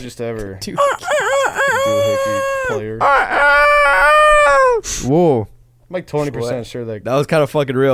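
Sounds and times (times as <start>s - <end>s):
speech: 0.0s - 7.9s
rooster crowing: 0.8s - 4.9s.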